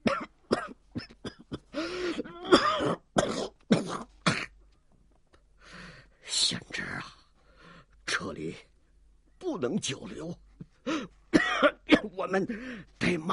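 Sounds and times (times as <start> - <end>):
old man coughing harshly and wheezing: 0.0 - 4.6, 11.3 - 12.2
raspy throat clearing: 0.0 - 4.6, 11.4 - 12.1
quiet breaths: 1.6 - 2.3, 4.7 - 9.4, 10.4 - 11.3, 12.4 - 13.1
speech: 9.6 - 10.4, 12.2 - 13.3.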